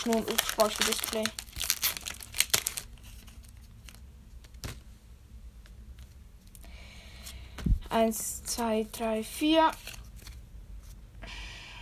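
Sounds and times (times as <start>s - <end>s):
speech: 0.0s - 1.4s, 7.9s - 9.9s
foil trading card pack crinkling and tearing open: 0.0s - 4.7s, 9.7s - 10.4s.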